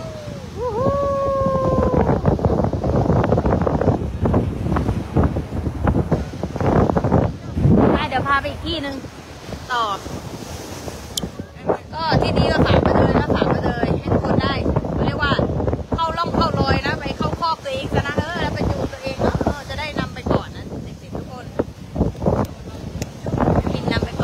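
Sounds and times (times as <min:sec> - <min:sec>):
gusting wind on a cold seashore: 0:00.0 - 0:24.2
surf on a cold seashore: 0:00.0 - 0:24.2
speech: 0:08.4 - 0:09.1.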